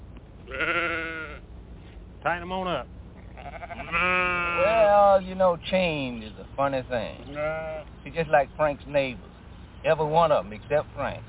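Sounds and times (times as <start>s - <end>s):
single sheep bleating: 0.5s - 1.4s, 3.2s - 4.9s, 7.2s - 7.9s
speech: 2.2s - 3.0s, 3.9s - 11.2s.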